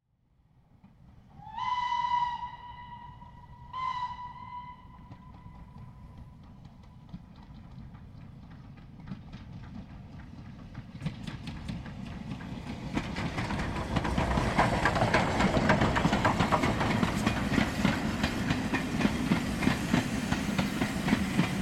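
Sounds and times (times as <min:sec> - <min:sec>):
steam train passing close by: 0:00.7 - 0:21.6
steam train whistle: 0:01.4 - 0:06.0.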